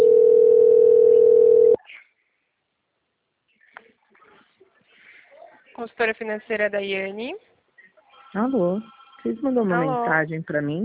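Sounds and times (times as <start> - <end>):
phone ringing with an incoming call: 0.0 - 1.8
speech: 5.9 - 7.5, 8.3 - 10.8.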